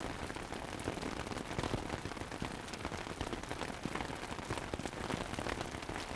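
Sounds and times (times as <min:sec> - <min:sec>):
rain on a tent: 0:00.0 - 0:06.1.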